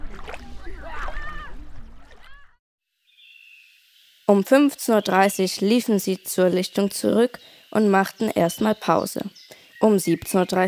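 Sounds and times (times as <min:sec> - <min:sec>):
water splashing and churning: 0:00.0 - 0:02.5
lively voices shouting: 0:00.6 - 0:02.5
speech: 0:04.3 - 0:10.6.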